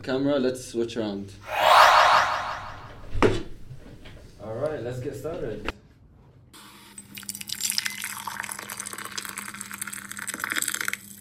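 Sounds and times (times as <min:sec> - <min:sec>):
speech: 0:00.0 - 0:01.6, 0:04.8 - 0:05.7
coffee pouring in a steady liquid trickle: 0:07.8 - 0:10.9.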